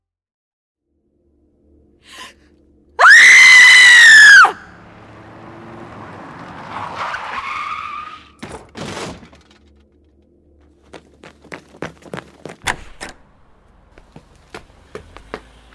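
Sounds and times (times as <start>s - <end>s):
person screaming: 3.0s - 4.7s
car tires screeching as it skids to a halt: 3.0s - 8.6s, 13.6s - 15.7s.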